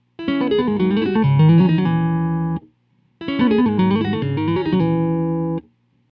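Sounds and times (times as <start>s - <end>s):
clean compressed guitar playing a D-flat minor tap lick: 0.2s - 5.6s.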